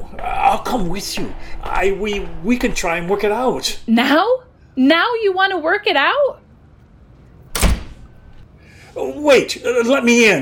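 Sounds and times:
quiet hum: 0.0 - 10.4
speech: 0.7 - 6.4, 9.0 - 10.4
train door sliding shut: 7.5 - 8.2.

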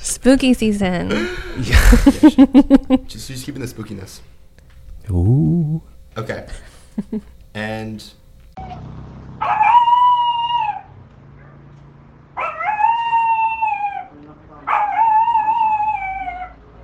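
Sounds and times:
speech: 0.2 - 4.4, 5.0 - 9.8
laughter: 1.1 - 3.1, 6.9 - 7.3
small dog howling: 9.4 - 11.6, 12.4 - 16.8.

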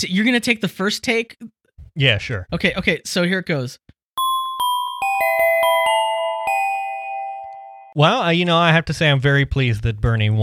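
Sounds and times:
speech: 0.0 - 3.8, 8.0 - 10.4
chime ringing a short melodic run of struck tones: 4.2 - 8.0.

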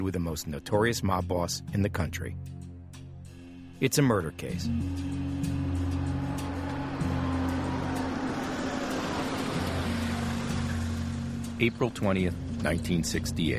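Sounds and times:
speech: 0.1 - 2.6, 3.8 - 6.5, 11.6 - 13.5
road noise: 4.5 - 13.5
car engine idling as the car rolls to a stop: 4.7 - 13.5.

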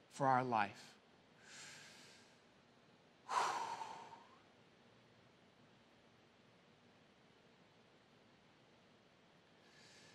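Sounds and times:
speech: 0.2 - 1.0
deep breathing during a guided moment of stillness and prayer: 1.4 - 2.4, 3.3 - 4.4, 9.6 - 10.1.

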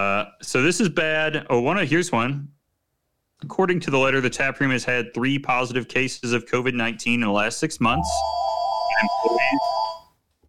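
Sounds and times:
speech: 0.0 - 2.6, 3.4 - 9.8
home landline telephone ringing with an electronic trill: 8.0 - 10.1.

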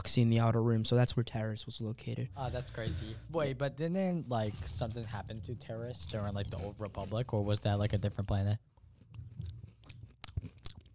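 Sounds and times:
speech: 0.0 - 8.7
person chewing gummy candies: 4.3 - 10.9.

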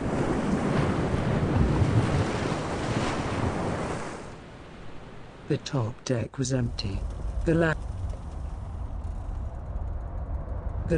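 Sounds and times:
heavy ocean waves crashing against a large merchant ship's hull: 0.0 - 5.1
gusting wind: 0.0 - 10.9
speech: 5.5 - 7.9.

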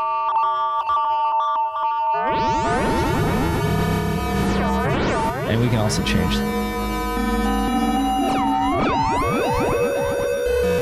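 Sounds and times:
synthesizer sine-wave oscillator holding a steady electronic tone: 0.0 - 10.8
loud gritty heavily distorted roar with buzzing overtones: 2.9 - 10.8
speech: 5.6 - 7.4.

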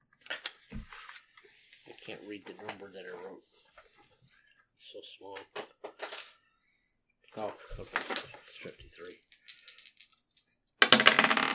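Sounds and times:
speech: 2.1 - 3.6, 4.9 - 5.8, 7.4 - 9.2
dice rolling and tumbling across a hard surface: 7.7 - 11.5.

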